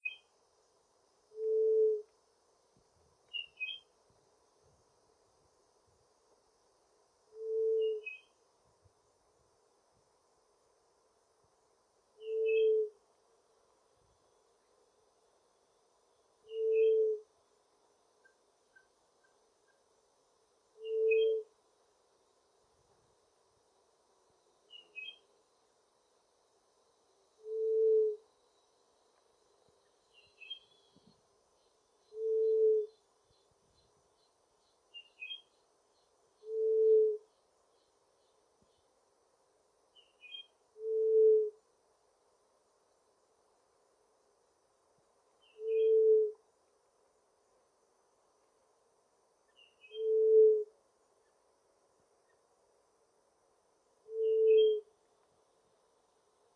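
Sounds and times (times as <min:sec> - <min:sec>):
Juriti gemedeira dove song: 0:00.0 - 0:00.4, 0:01.0 - 0:02.4, 0:03.0 - 0:04.8, 0:06.9 - 0:09.0, 0:11.4 - 0:13.2, 0:14.0 - 0:41.8, 0:44.8 - 0:47.5, 0:49.2 - 0:52.7, 0:53.6 - 0:56.5.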